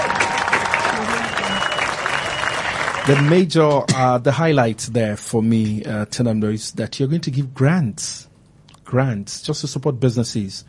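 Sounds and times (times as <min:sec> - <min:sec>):
audience applauding after a speech: 0:00.0 - 0:03.5
speech: 0:03.1 - 0:08.3, 0:08.9 - 0:10.6.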